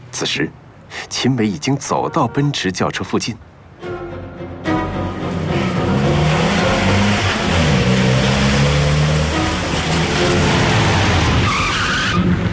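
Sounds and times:
speech: 0:00.1 - 0:03.9
Buick minivan engine roaring: 0:03.8 - 0:12.5
Buick minivan tires screeching in a long skid while braking: 0:05.3 - 0:12.5.

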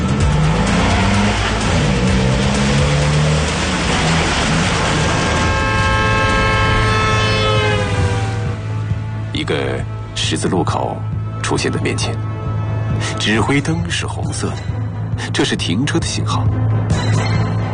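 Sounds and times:
car engine accelerating out of a parking lot onto a road: 0:00.0 - 0:09.3
car tire noise: 0:00.0 - 0:10.2
speech: 0:10.3 - 0:12.3, 0:13.0 - 0:17.1.

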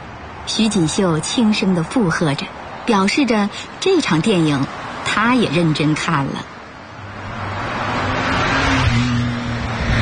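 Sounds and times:
speech: 0:00.5 - 0:06.6
car speeding past: 0:07.0 - 0:09.9.

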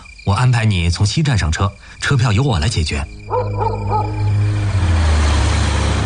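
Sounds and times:
speech: 0:00.2 - 0:04.2
road noise: 0:02.0 - 0:06.0
small car engine rumbling through city streets at night: 0:02.6 - 0:06.0
high-pitched calls: 0:02.9 - 0:05.0.

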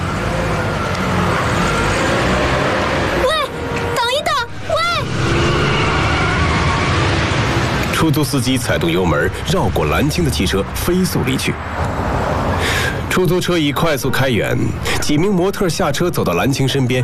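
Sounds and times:
taxi engine revving while accelerating: 0:00.0 - 0:09.4
road noise and traffic rumble: 0:00.0 - 0:17.0.

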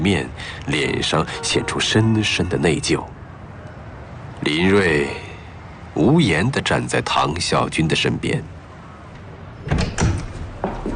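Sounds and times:
speech: 0:00.0 - 0:03.2, 0:04.4 - 0:05.3, 0:06.0 - 0:08.6
door being pushed open: 0:09.6 - 0:10.9.

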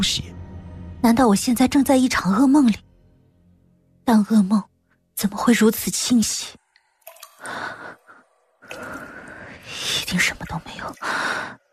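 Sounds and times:
speech: 0:01.0 - 0:02.9, 0:04.1 - 0:06.6, 0:09.7 - 0:11.7
water dripping from pipes inside a wall: 0:05.3 - 0:11.7.

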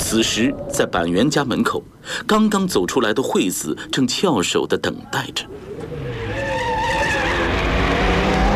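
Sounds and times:
speech: 0:00.1 - 0:05.8
motorcycle engine droning as it rolls up and slows: 0:05.7 - 0:08.5.

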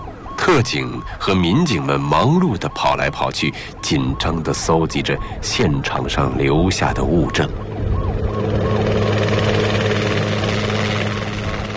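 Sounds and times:
speech: 0:00.5 - 0:07.8
police helicopter rotor drone and engine whine while circling overhead: 0:06.4 - 0:11.7.

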